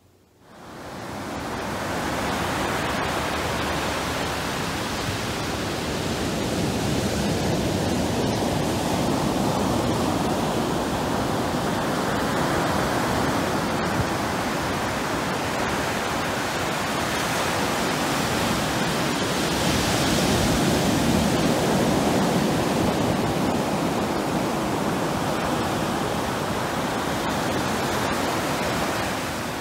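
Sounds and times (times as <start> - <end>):
ocean surf with crashing waves: 0.6 - 29.6.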